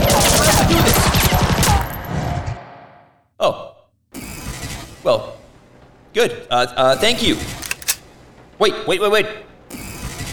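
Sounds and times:
rapid gunfire from a video game weapon: 0.0s - 2.0s
speech: 5.0s - 5.4s, 6.2s - 7.6s, 8.6s - 9.8s.

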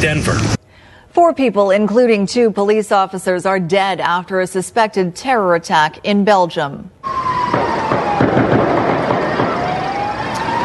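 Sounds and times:
speech: 0.0s - 0.6s, 1.2s - 7.6s
police siren wailing: 7.0s - 10.6s
street noise: 7.0s - 10.6s
sharp gunshots in a street: 7.4s - 10.1s.

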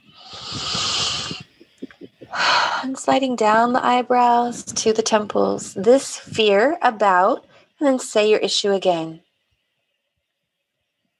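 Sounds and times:
big deep breath during a self-help tapping exercise: 0.0s - 2.9s
speech: 2.8s - 9.2s.

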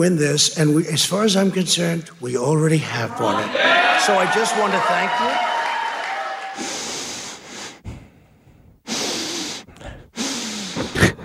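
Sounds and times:
speech: 0.0s - 5.5s
heavy deep breaths through the nose: 6.6s - 11.2s.

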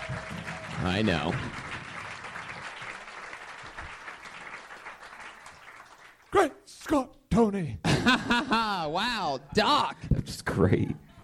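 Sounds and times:
audience applause: 0.0s - 6.4s
speech: 0.8s - 1.6s, 6.9s - 11.1s
laughter: 7.8s - 9.7s.

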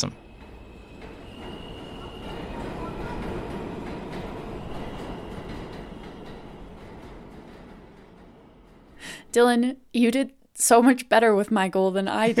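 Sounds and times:
speech: 0.0s - 0.2s, 9.3s - 12.3s
underground metro train wheels rumbling on track: 0.0s - 9.9s.

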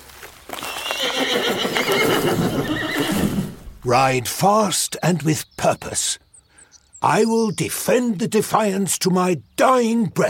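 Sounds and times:
horse neighing at the stables: 0.6s - 3.7s
speech: 1.3s - 6.2s, 7.0s - 10.2s.

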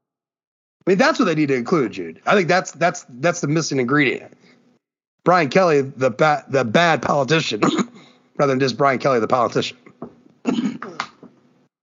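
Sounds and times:
speech: 0.9s - 4.6s, 5.2s - 7.8s, 8.4s - 9.8s
harsh throat clearing: 7.6s - 8.1s, 10.4s - 11.2s
person coughing rough and phlegmy: 7.6s - 8.1s, 10.4s - 11.2s.

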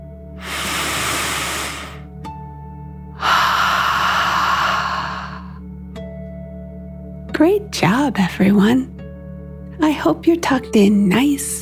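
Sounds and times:
deep breath in and out: 0.4s - 2.1s, 3.2s - 5.6s
speech: 7.4s - 8.9s, 9.8s - 11.5s.

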